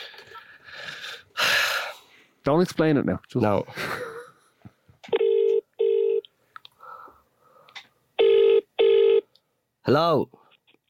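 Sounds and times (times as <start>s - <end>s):
speech: 2.4s - 4.0s, 9.9s - 10.4s
outgoing telephone call buzzing ring tones: 5.1s - 6.2s, 8.2s - 9.3s.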